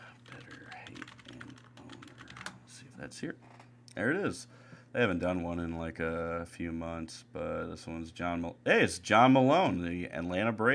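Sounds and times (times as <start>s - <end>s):
low steady hum: 0.0s - 10.7s
typing on a computer keyboard: 0.2s - 2.6s
speech: 3.0s - 10.7s.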